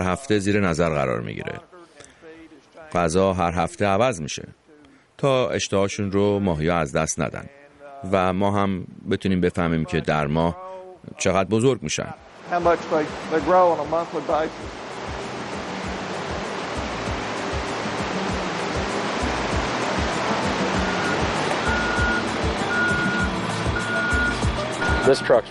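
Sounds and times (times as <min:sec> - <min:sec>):
speech: 0:00.0 - 0:01.7, 0:02.9 - 0:04.6, 0:05.2 - 0:15.2, 0:25.1 - 0:25.4
rushing water at a trout hatchery: 0:12.3 - 0:25.4
trout hatchery truck engine noise: 0:12.3 - 0:25.4
trout hatchery truck reversing beeps: 0:20.9 - 0:25.4.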